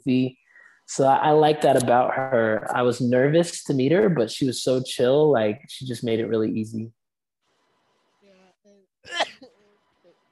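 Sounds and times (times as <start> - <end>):
speech: 0.0 - 7.0
person sneezing: 9.1 - 9.5.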